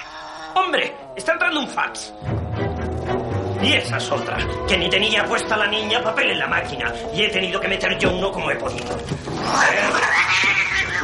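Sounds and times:
cat yowling as it is put into a pressing machine: 0.0 - 2.3, 6.0 - 11.0
speech: 0.6 - 2.4, 3.6 - 11.0.

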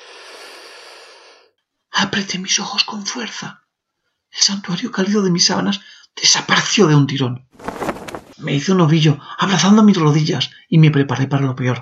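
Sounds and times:
single long heavy breath with a rough airy rasp: 0.0 - 1.6
speech: 2.0 - 3.6, 4.4 - 7.5, 8.4 - 11.8.

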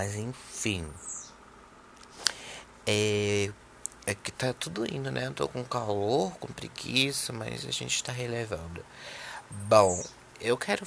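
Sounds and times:
speech: 0.0 - 1.1, 2.9 - 10.8
small bird chirping: 1.0 - 1.4, 9.6 - 10.2.

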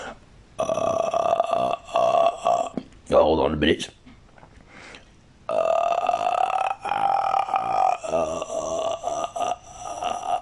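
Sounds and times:
person imitating a creepy croaking ghost noise: 0.6 - 2.9, 5.5 - 10.4
speech: 3.3 - 4.0.

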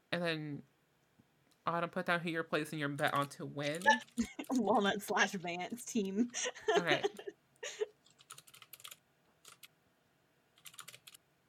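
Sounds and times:
speech: 0.2 - 0.7, 1.6 - 7.9
laughter: 3.7 - 5.5, 6.2 - 7.9
typing on a computer keyboard: 8.0 - 9.7, 10.6 - 11.2.

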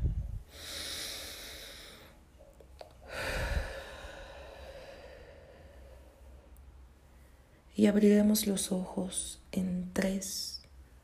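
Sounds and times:
slow deep breath during a meditation: 0.5 - 2.2, 3.0 - 7.7
speech: 7.8 - 10.6.

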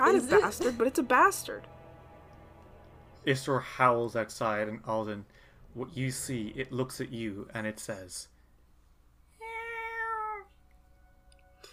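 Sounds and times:
speech: 0.0 - 1.8, 3.2 - 8.3
cat meowing: 9.4 - 10.5.

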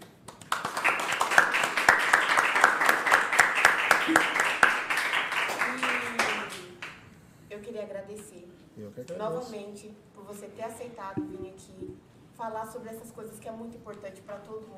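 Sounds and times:
small crowd applauding: 0.5 - 6.6
speech: 9.0 - 14.7.

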